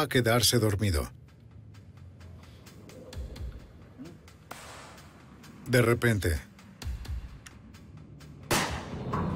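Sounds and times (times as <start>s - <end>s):
speech: 0.0s - 1.2s, 5.7s - 6.5s
single gunshot fired by accident during a kidnapping: 4.5s - 5.0s, 8.5s - 9.2s.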